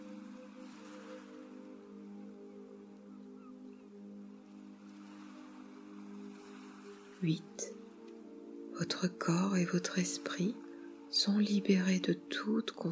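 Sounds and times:
gentle ocean waves washing ashore: 0:00.0 - 0:12.4
speech: 0:07.2 - 0:07.8, 0:08.8 - 0:12.9.

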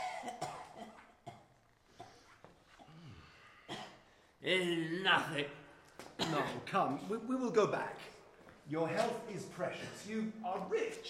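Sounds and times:
person coughing in harsh bursts in a cavern with nitre on its walls: 0:00.0 - 0:02.2, 0:02.8 - 0:04.1, 0:06.2 - 0:06.6, 0:09.8 - 0:10.2
strained throaty wheeze: 0:01.9 - 0:04.2
speech: 0:04.4 - 0:05.6, 0:06.3 - 0:08.1, 0:08.7 - 0:11.0.

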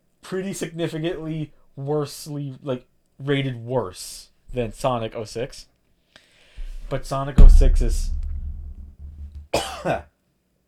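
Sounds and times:
speech: 0:00.3 - 0:05.7, 0:06.9 - 0:08.2, 0:09.5 - 0:10.1
low steady hum: 0:06.6 - 0:09.4
person coughing: 0:09.6 - 0:10.0.

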